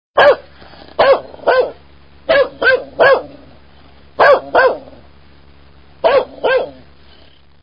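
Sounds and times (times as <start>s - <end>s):
dog barking: 0.2s - 3.4s, 4.2s - 5.0s, 6.0s - 6.8s.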